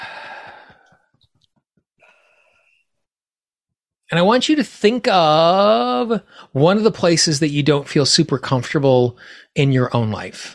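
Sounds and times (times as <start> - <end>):
big deep breath taken during a group exercise: 0.0 - 1.1, 2.0 - 3.0, 9.2 - 9.5
speech: 4.1 - 10.5.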